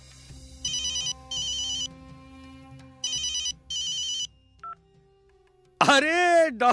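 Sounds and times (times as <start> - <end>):
telephone ringing with bright electronic trilling: 0.6 - 1.9, 3.0 - 4.8
speech: 5.9 - 6.7.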